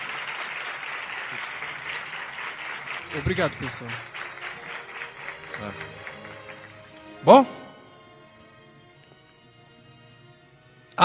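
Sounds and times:
audience applause at a Bible talk: 0:00.0 - 0:08.1
speech: 0:03.1 - 0:04.1, 0:05.6 - 0:06.0, 0:07.2 - 0:07.6.

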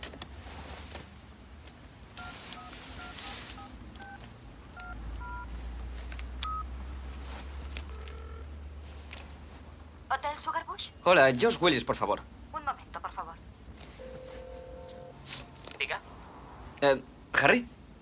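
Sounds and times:
touch-tone dialing on a limousine's car phone: 0:02.2 - 0:05.5, 0:06.5 - 0:06.7, 0:07.9 - 0:08.8
speech: 0:10.2 - 0:12.3, 0:16.8 - 0:17.7.

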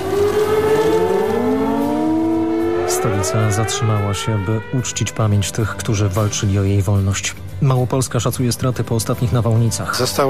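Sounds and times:
civil defense sirens wailing: 0:00.0 - 0:05.5
speech: 0:03.0 - 0:10.2.

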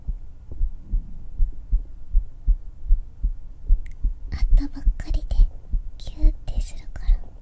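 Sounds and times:
steady heartbeat for a sleep-aid recording: 0:00.0 - 0:07.4
speech: 0:04.6 - 0:04.9.

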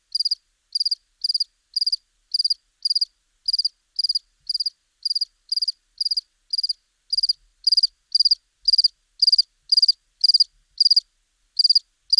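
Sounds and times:
house cricket chirping in Buoux, Vaucluse: 0:00.1 - 0:11.0, 0:11.6 - 0:12.1.

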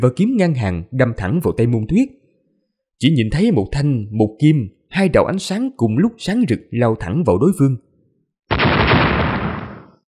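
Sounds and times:
speech: 0:00.0 - 0:02.2, 0:03.0 - 0:07.9
explosion sound effect: 0:08.5 - 0:10.0.

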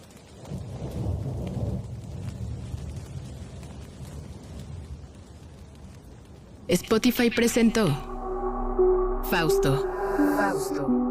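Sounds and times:
steady rain: 0:00.0 - 0:08.2
distant thunder rolling: 0:00.4 - 0:06.7
speech: 0:06.7 - 0:08.1, 0:09.3 - 0:11.0.

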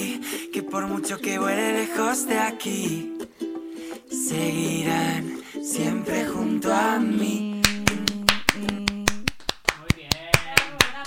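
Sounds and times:
speech: 0:00.7 - 0:03.2, 0:04.3 - 0:07.5
group of older women clapping in a radio studio: 0:07.6 - 0:11.0.

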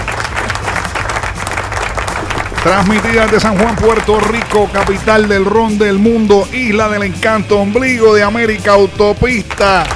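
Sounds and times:
crowd applause and clapping: 0:00.0 - 0:05.4
speech: 0:02.6 - 0:09.9.

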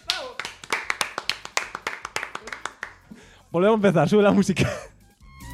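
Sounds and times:
applause: 0:00.0 - 0:03.1
speech: 0:03.5 - 0:04.9.

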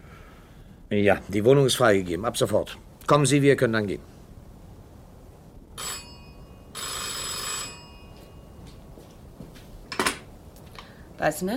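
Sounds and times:
faint room noise: 0:00.0 - 0:11.5
speech: 0:00.9 - 0:04.1, 0:11.2 - 0:11.5
metallic telephone bell ringing late at night: 0:05.8 - 0:08.8.

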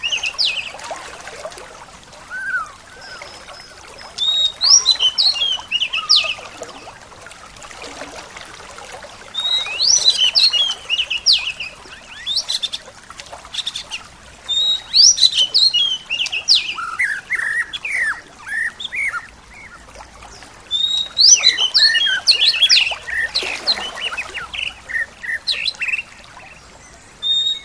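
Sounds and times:
bird chirping and twittering: 0:00.0 - 0:00.8, 0:02.3 - 0:06.4, 0:09.4 - 0:12.8, 0:13.5 - 0:19.8, 0:20.7 - 0:26.6, 0:27.2 - 0:27.6.

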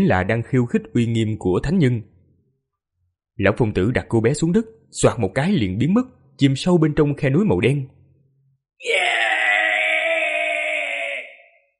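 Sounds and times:
speech: 0:00.0 - 0:02.1, 0:03.4 - 0:08.0, 0:08.8 - 0:09.0
demon wailing miserably sound effect: 0:08.8 - 0:11.7.

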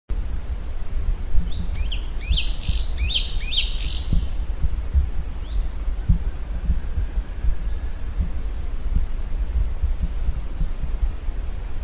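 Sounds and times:
steady low rumbling noise: 0:00.1 - 0:11.8
bird song: 0:01.4 - 0:05.9, 0:06.6 - 0:08.7, 0:09.6 - 0:11.2.

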